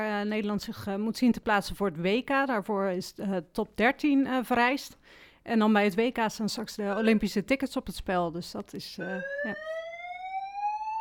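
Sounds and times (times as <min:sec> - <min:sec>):
speech: 0:00.0 - 0:09.8
building fire alarm ringing with steady electronic tone: 0:09.0 - 0:10.9.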